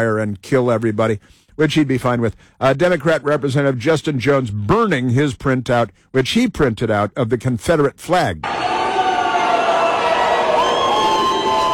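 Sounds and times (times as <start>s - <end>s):
speech: 0.0s - 8.6s
large crowd at the State House in Nashville jeering and shouting: 8.4s - 11.7s
raised cries: 8.4s - 11.7s.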